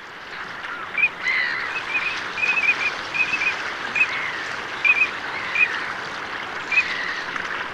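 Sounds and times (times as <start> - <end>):
rushing water: 0.0 - 7.7
wind: 0.0 - 7.7
Eurasian teal giving short high whistled calls: 0.7 - 5.8, 6.7 - 7.2.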